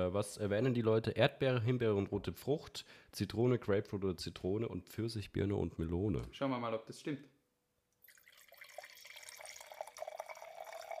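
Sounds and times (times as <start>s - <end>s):
speech: 0.0s - 7.3s
wine pouring into glasses: 8.0s - 10.9s.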